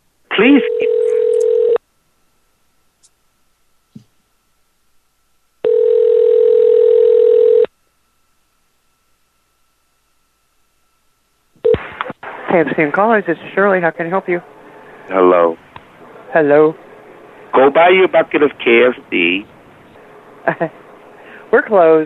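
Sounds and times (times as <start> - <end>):
speech: 0.4 - 1.0, 12.6 - 15.6, 16.3 - 16.8, 17.5 - 19.5, 20.4 - 20.8, 21.5 - 22.0
telephone ringing tone while a call goes through to a restaurant: 0.4 - 1.8, 5.6 - 7.7.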